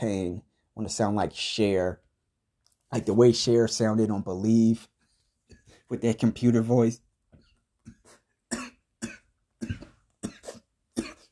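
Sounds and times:
speech: 0.0s - 2.0s, 2.9s - 4.9s, 5.9s - 7.0s
man coughing from an irritable throat: 7.9s - 11.2s.

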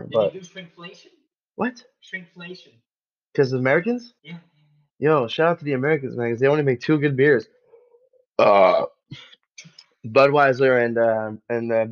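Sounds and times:
speech: 0.0s - 7.6s, 8.4s - 11.8s
loud deep croaky burp: 8.4s - 9.0s.

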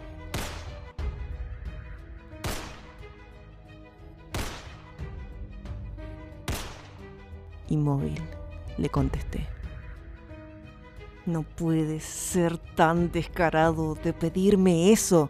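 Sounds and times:
gunshots fired into the ceiling: 0.3s - 0.8s, 2.4s - 3.0s, 4.3s - 4.9s, 6.5s - 7.0s
speech: 7.7s - 9.6s, 11.2s - 15.2s.

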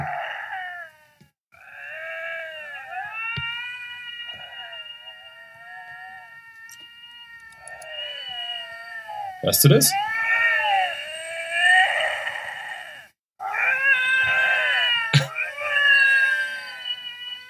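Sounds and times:
two lynxes yowling at each other: 0.0s - 17.4s
speech: 9.4s - 10.1s.

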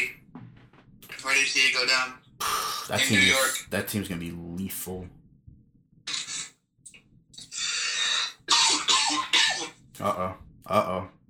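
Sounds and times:
speech: 1.3s - 5.2s, 10.0s - 11.2s
person coughing harshly: 8.4s - 9.8s.

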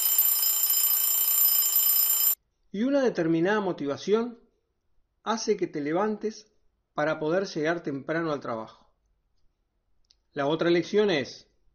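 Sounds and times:
electronic alarm clock ringing: 0.0s - 2.4s
speech: 2.7s - 4.4s, 5.2s - 8.8s, 10.3s - 11.5s.

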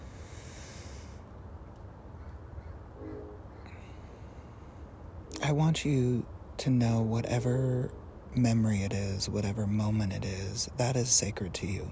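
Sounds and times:
birds calling caw-like at dawn: 2.1s - 4.3s
speech: 5.5s - 11.9s.

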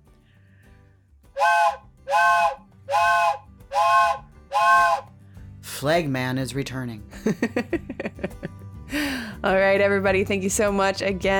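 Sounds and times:
speech: 1.4s - 5.1s, 5.7s - 7.8s, 8.9s - 11.3s
steam locomotive whistle blasts at a public grade crossing: 1.4s - 5.1s.

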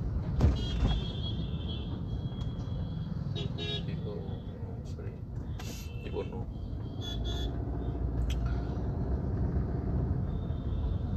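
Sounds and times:
dense city traffic rumbling around a moving car: 0.0s - 11.1s
low engine and road noise of a moving car: 0.0s - 11.1s
car horns honking in city traffic: 0.4s - 4.5s, 5.5s - 7.7s.

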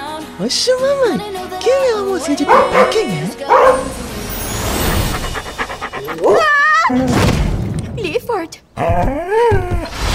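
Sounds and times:
speech: 0.4s - 3.9s, 6.9s - 7.3s, 8.0s - 10.0s
small dog yelp-like barking: 2.4s - 4.0s
small dog panting: 5.0s - 6.4s.

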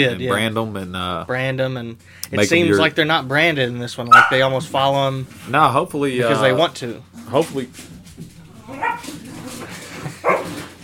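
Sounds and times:
speech: 0.0s - 9.2s
excited dogs barking and yipping in a scuffle over rope toy: 4.1s - 4.5s, 8.6s - 10.7s
dogs whining and growly yelping: 8.6s - 10.7s.

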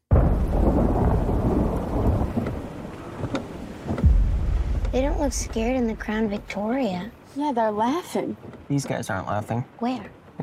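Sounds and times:
heavy rain pouring: 0.0s - 10.4s
deep rumbling undertone: 0.1s - 7.3s
sharp water splashes: 0.1s - 10.4s
speech: 5.0s - 10.4s.

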